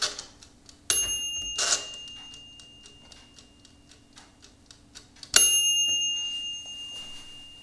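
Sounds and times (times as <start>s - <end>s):
halogen convection oven timer ticking: 0.0s - 7.6s
mechanical timer bell on a halogen convection oven ringing: 0.9s - 3.9s, 5.4s - 7.6s.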